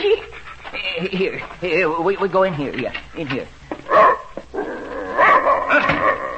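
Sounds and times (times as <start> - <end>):
speech: 1.0 - 4.1
large German shepherd dog barking: 3.9 - 4.3, 5.2 - 6.2
German shepherd dog growly whining yelps: 5.2 - 6.3.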